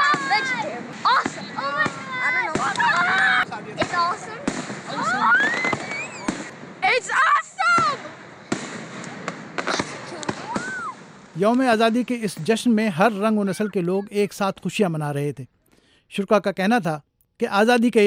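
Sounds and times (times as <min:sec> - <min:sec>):
fireworks over a lake at an Independence Day celebration: 0:00.0 - 0:13.9
speech: 0:11.4 - 0:18.0.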